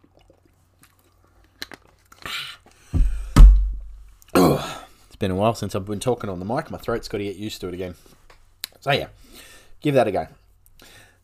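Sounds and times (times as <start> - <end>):
heavy gulps: 0.0 - 3.3
person taking a swig of water: 0.0 - 3.3
speech: 4.6 - 8.2, 8.8 - 10.4.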